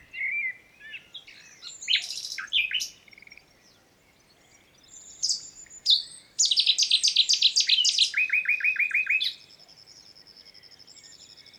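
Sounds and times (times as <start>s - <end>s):
common nightingale (Luscinia megarhynchos) song: 0.0s - 11.5s.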